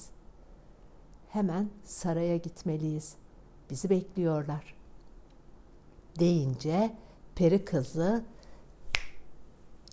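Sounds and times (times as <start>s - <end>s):
speech: 1.4s - 4.8s, 6.2s - 8.4s
finger snap: 8.9s - 9.3s.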